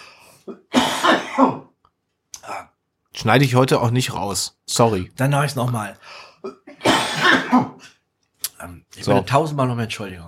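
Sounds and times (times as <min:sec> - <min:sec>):
person clearing throat: 0:00.4 - 0:01.8, 0:06.4 - 0:08.0
person coughing: 0:00.4 - 0:01.8, 0:06.4 - 0:08.0
speech: 0:03.2 - 0:06.6, 0:07.2 - 0:08.0, 0:08.6 - 0:10.2.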